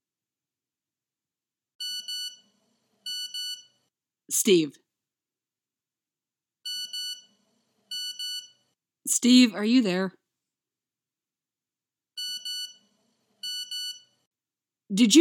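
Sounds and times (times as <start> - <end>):
shrill electronic cell phone alert beeps: 1.8 - 2.4, 3.1 - 3.7, 6.7 - 7.3, 7.9 - 8.6, 12.2 - 12.8, 13.4 - 14.1
single brief spoken word: 4.3 - 4.8
speech: 4.3 - 4.8, 9.2 - 10.2, 15.0 - 15.1.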